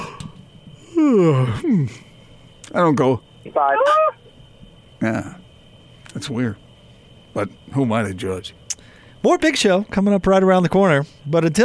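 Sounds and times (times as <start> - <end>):
man imitating a yawn with his voice: 0.8 - 1.9
speech: 1.0 - 2.1, 2.7 - 4.2, 5.0 - 5.4, 6.2 - 6.6, 7.4 - 8.6, 9.2 - 11.6.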